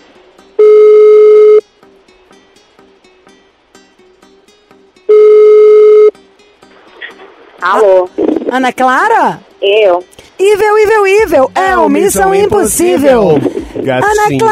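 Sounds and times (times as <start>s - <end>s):
faint noise: 0.0s - 14.5s
telephone ringback tone while placing a call: 0.6s - 1.7s, 5.1s - 6.2s
speech: 7.6s - 14.5s.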